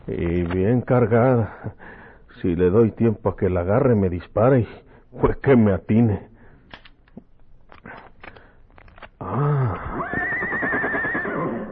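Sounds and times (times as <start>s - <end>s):
speech: 0.0s - 6.3s
horse neighing: 9.2s - 11.7s.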